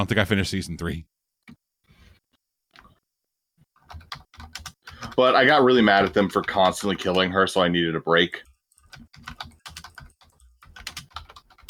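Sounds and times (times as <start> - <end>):
speech: 0.0 - 1.1, 5.2 - 8.5
typing on a computer keyboard: 3.8 - 5.2, 5.8 - 7.3, 8.4 - 11.6.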